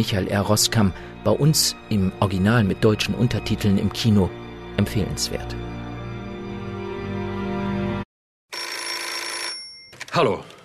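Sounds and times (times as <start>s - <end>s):
speech: 0.0s - 5.8s, 10.2s - 10.6s
telephone ringing in a film scene: 8.5s - 10.2s.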